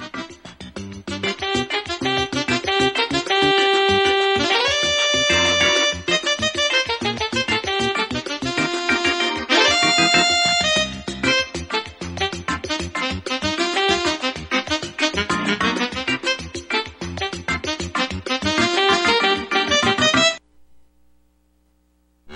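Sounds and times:
bright upbeat instrumental music sting: 0.0 - 20.4.

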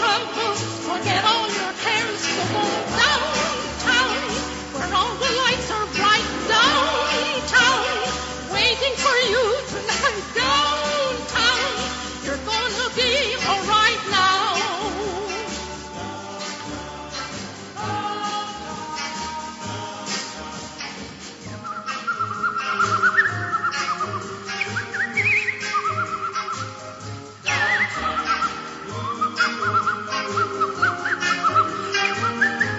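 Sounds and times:
full band backing in a song: 0.0 - 32.7
woman whistling a bright wavering melody: 21.6 - 26.9, 27.5 - 32.7.

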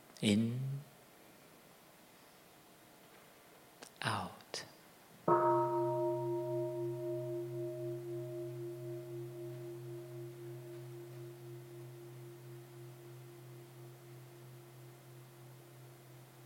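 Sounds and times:
speech: 0.2 - 0.7
mindfulness bell struck and ringing: 5.3 - 16.4.

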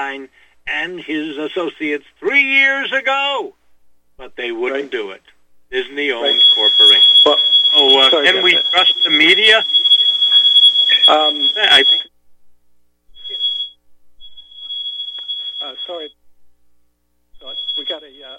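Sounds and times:
speech: 0.0 - 3.6, 4.2 - 9.9, 11.1 - 12.0, 15.6 - 16.2, 17.4 - 18.3
shrill smoke alarm beeping, set off by accident: 5.8 - 12.1, 13.1 - 16.2, 17.3 - 18.3.

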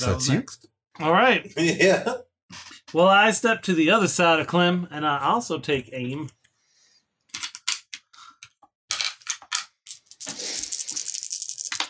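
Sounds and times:
speech: 0.0 - 6.4
laughter: 1.6 - 2.2
many dice rolling during a tabletop game: 8.9 - 11.8.

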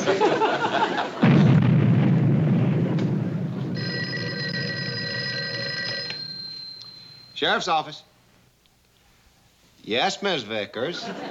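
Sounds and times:
laughter: 0.0 - 1.3, 10.8 - 11.2
construction blast boom on an underpass: 1.2 - 4.0
speech: 7.4 - 8.1, 9.8 - 11.2.

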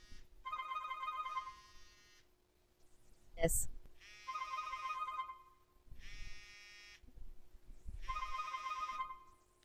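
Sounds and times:
cell phone ringing from incoming call: 0.4 - 2.2, 4.0 - 7.0, 8.0 - 9.4
speech: 3.4 - 3.8.

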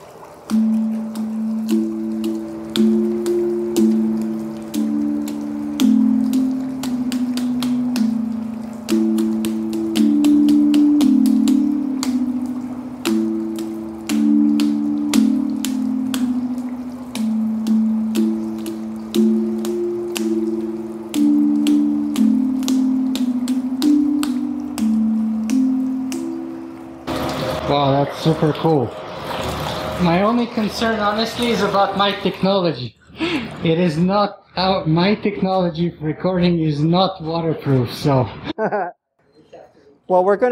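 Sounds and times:
hydraulophone playing a slow sustained melody: 0.0 - 32.4
water splashing and dripping: 0.0 - 34.0
speech: 28.4 - 29.1, 30.0 - 33.0, 33.6 - 39.0, 40.1 - 40.5.

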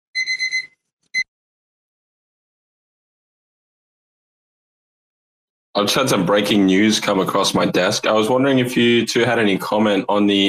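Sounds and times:
electronic alarm beeping: 0.1 - 1.3
speech: 5.8 - 10.4.

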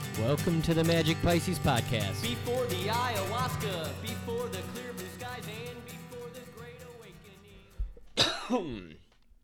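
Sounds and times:
speech: 0.2 - 6.0, 8.5 - 9.0
person coughing with a raspy hack: 8.1 - 9.1.

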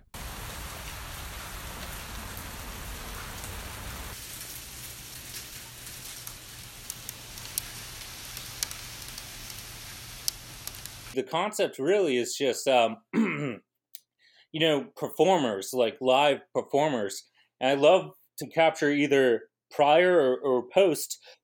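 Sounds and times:
hail pellets ticking and cracking: 0.0 - 11.2
steady dense rain hissing: 0.0 - 11.2
speech: 11.2 - 13.2, 14.5 - 21.4.

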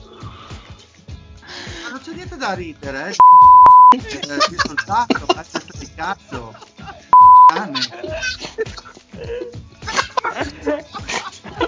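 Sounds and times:
speech: 2.0 - 6.6, 7.6 - 9.6
brief electronic beep: 3.2 - 4.0, 7.2 - 7.6
laughter: 4.0 - 11.6.

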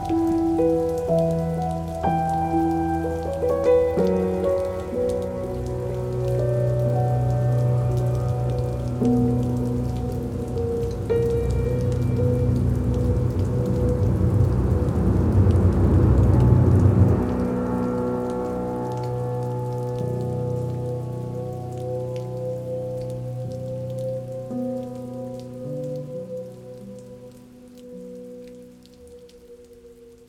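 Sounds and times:
low musical tones: 0.0 - 30.2
rain pattering on the ground: 0.0 - 30.2
deep rumble: 10.2 - 18.9.

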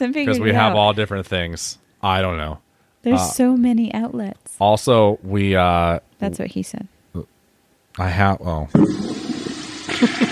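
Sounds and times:
speech: 0.0 - 7.3, 8.0 - 9.2, 10.0 - 10.2
toilet flushing: 8.7 - 10.2.

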